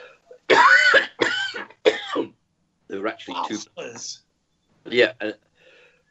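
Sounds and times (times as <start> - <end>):
person coughing harshly: 0.5 - 2.3, 3.4 - 4.0
speech: 3.0 - 5.5.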